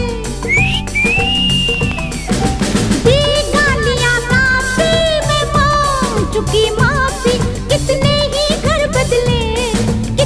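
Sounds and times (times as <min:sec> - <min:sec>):
Hindi song musical backing: 0:00.0 - 0:10.2
whistling inside a Hindi song: 0:00.4 - 0:04.2.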